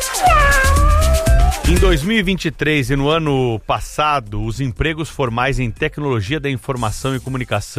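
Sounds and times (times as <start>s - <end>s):
cat meowing: 0.2s - 1.8s
speech: 1.9s - 7.7s.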